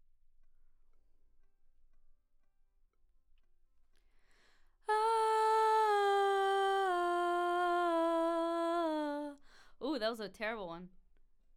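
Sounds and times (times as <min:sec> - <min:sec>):
background voices: 0:04.9 - 0:09.4.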